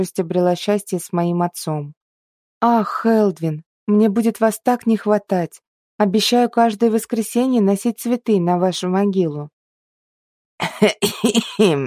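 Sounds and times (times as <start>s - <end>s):
speech: 0.0s - 2.0s, 2.6s - 9.6s, 10.6s - 11.8s
voice imitating heavyset man choking and coughing: 10.6s - 11.8s.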